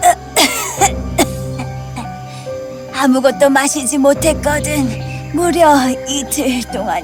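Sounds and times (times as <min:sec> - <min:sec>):
elderly woman clearing her throat: 0:00.0 - 0:02.1
parched and weak elderly woman coughing hard: 0:00.0 - 0:02.1
speech: 0:03.0 - 0:07.0.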